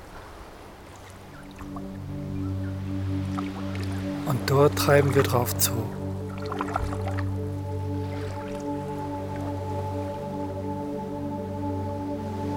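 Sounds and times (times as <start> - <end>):
feet stepping into shallow sea water: 0.0 - 10.4
droning musical hum: 1.5 - 4.3, 5.9 - 12.5
speech: 4.3 - 6.0.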